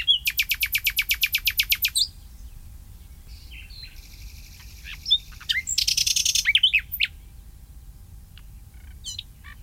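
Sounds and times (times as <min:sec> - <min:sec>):
common nightingale singing: 0:00.0 - 0:07.5, 0:08.4 - 0:09.6
low steady rumble: 0:02.0 - 0:09.6.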